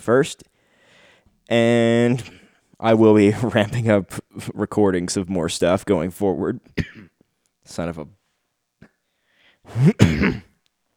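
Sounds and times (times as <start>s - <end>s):
speech: 0.0s - 0.5s, 1.5s - 7.1s, 7.7s - 8.2s, 9.6s - 10.5s
person coughing: 6.8s - 7.2s, 9.7s - 10.6s.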